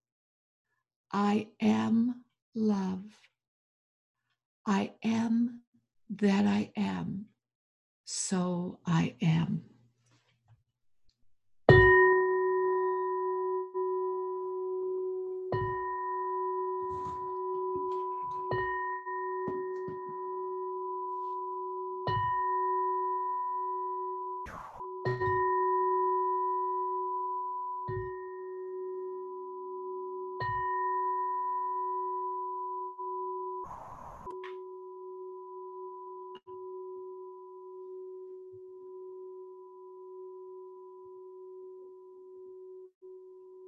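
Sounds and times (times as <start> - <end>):
speech: 1.1 - 3.3, 4.7 - 7.3, 8.1 - 9.7
chakra singing bowl ringing: 11.7 - 33.7, 34.3 - 42.5.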